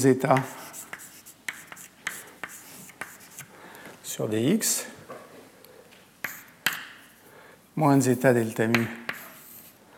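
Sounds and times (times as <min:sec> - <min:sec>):
speech: 0:00.0 - 0:00.6, 0:04.2 - 0:05.0, 0:07.8 - 0:09.0
equation being handwritten during a lecture: 0:00.3 - 0:03.5, 0:06.2 - 0:07.0, 0:08.7 - 0:09.6.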